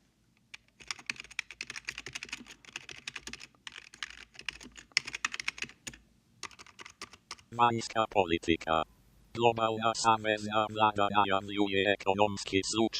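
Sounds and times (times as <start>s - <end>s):
fast typing on a computer keyboard: 0.5s - 7.5s
speech: 7.5s - 12.9s.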